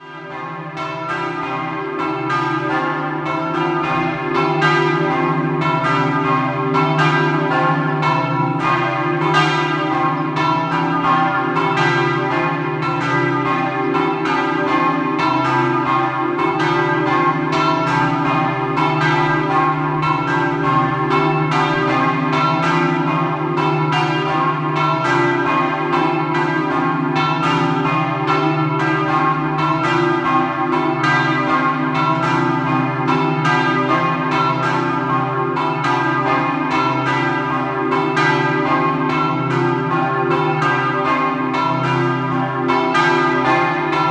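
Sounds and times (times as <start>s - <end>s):
bells in Bagnarola: 0.0s - 44.1s.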